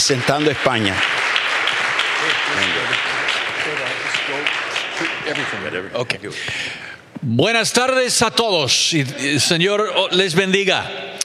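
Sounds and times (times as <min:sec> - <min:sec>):
speech: 0:00.0 - 0:01.2, 0:05.0 - 0:11.2
audience applause for a guest speaker: 0:00.0 - 0:06.2
indistinct voices murmuring and calling out: 0:02.2 - 0:03.0.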